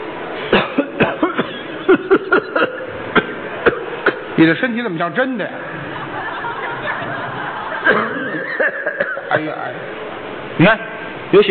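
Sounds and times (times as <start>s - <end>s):
person acting out exaggerated coughs: 0.5s - 4.4s, 7.9s - 9.3s
laughter: 1.2s - 4.4s, 5.5s - 9.9s
speech: 4.4s - 5.7s, 9.4s - 10.0s, 10.6s - 11.4s.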